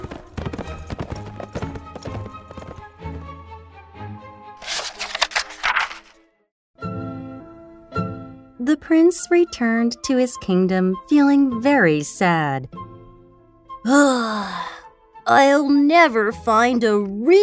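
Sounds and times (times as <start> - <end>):
horse hooves clip-clopping: 0.0 - 3.0
light orchestral music: 0.1 - 6.2, 6.8 - 17.4
speech: 8.7 - 12.8, 13.8 - 14.7, 15.3 - 17.4.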